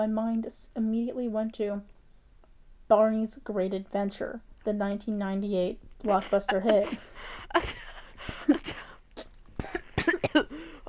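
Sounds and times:
speech: 0:00.0 - 0:02.0, 0:02.9 - 0:08.6
laughter: 0:06.1 - 0:07.8
person coughing in sharp bursts: 0:06.1 - 0:09.0, 0:09.6 - 0:10.8.

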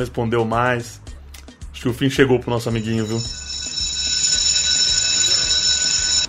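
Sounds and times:
speech: 0:00.0 - 0:01.1, 0:01.8 - 0:03.4
loud electric school bell ringing: 0:02.8 - 0:06.2.

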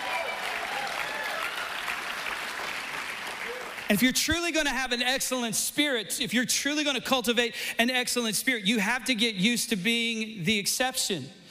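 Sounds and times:
congregation applauding and cheering at a morning service: 0:00.0 - 0:04.2
speech: 0:03.9 - 0:11.4.

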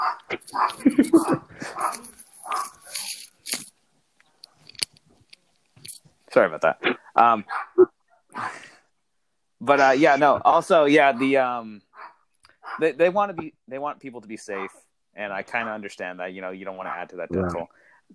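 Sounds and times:
dog barking with sharp yips and woofs: 0:00.0 - 0:02.8, 0:07.5 - 0:07.7, 0:12.0 - 0:12.8, 0:14.5 - 0:14.7, 0:16.8 - 0:17.1
speech: 0:00.2 - 0:02.0, 0:06.4 - 0:08.6, 0:09.6 - 0:11.8, 0:12.8 - 0:18.1
laughter: 0:00.5 - 0:02.2.

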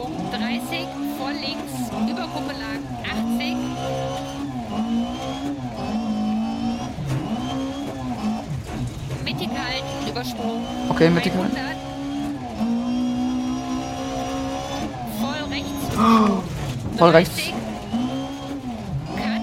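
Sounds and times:
speech: 0:00.0 - 0:05.6, 0:09.5 - 0:11.8, 0:16.0 - 0:17.6
rally car engine revving in a racing video game: 0:00.0 - 0:19.4.

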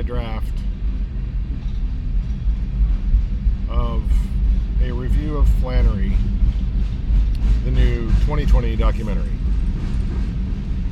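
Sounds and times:
big train passing nearby: 0:00.0 - 0:10.9
speech: 0:05.4 - 0:06.3, 0:08.3 - 0:09.4.

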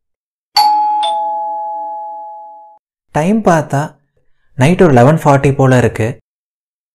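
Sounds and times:
two-tone doorbell chime at a home: 0:00.6 - 0:02.8
speech: 0:03.2 - 0:04.0, 0:04.6 - 0:06.2.

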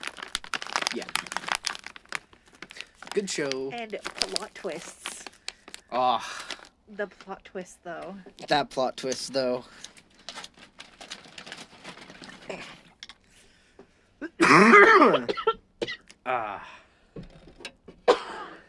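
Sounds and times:
speech: 0:00.9 - 0:01.3, 0:03.2 - 0:05.1, 0:05.9 - 0:09.9
several people coughing and clearing throats: 0:14.3 - 0:16.0, 0:18.1 - 0:18.6.

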